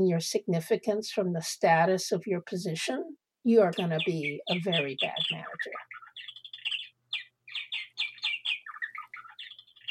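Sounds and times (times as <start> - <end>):
speech: 0.0 - 6.3
small bird chirping in bursts of twittering notes: 3.5 - 9.8.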